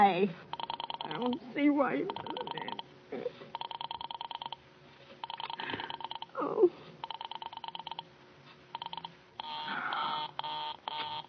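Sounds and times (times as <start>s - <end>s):
speech: 0.0s - 3.4s
pulsed buzzing telephone line tone as an operator dials: 0.5s - 1.4s, 2.1s - 2.9s, 3.5s - 4.6s, 5.2s - 6.4s, 7.0s - 8.1s, 8.7s - 11.2s.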